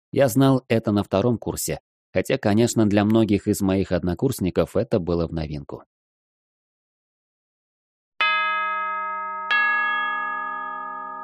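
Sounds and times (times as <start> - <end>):
speech: 0.1 - 5.9
school bell ringing at the end of a class: 8.2 - 11.2.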